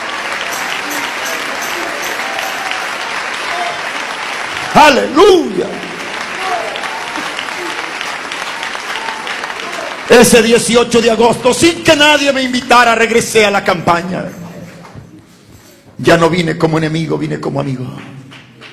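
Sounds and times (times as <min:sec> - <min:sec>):
congregation clapping: 0:00.0 - 0:15.3, 0:16.8 - 0:18.7
crowd noise: 0:00.0 - 0:16.0
speech: 0:04.8 - 0:05.8, 0:10.1 - 0:14.4, 0:16.0 - 0:18.2.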